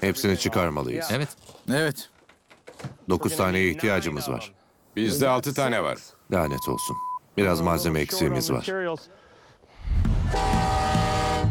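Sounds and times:
speech: 0.0s - 2.2s, 2.8s - 9.2s, 9.9s - 10.8s
train horn at a station: 10.3s - 11.4s.

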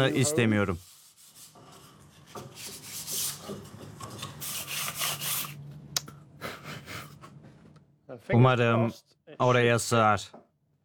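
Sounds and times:
speech: 0.0s - 0.9s, 8.3s - 10.4s
sandpaper smoothing corners of a newly cut replacement part: 0.0s - 3.5s, 4.4s - 5.6s.

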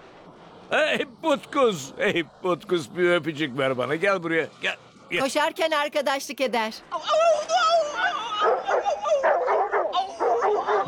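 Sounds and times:
speech: 0.7s - 7.6s
dog whimpering: 7.1s - 10.8s
dog yipping and barking: 8.4s - 10.8s.

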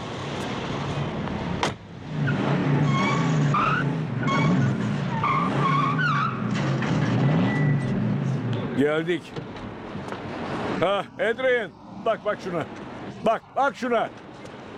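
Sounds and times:
racing car engine roaring: 0.0s - 14.7s
car tires squealing and skidding: 2.1s - 8.5s
speech: 8.8s - 9.6s, 10.8s - 14.2s.

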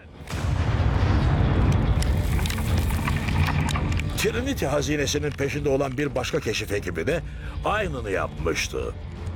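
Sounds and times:
deep rumbling explosive blast in an active blasting zone: 0.2s - 3.4s
crackling debris: 0.2s - 6.4s
speech: 4.2s - 9.2s.

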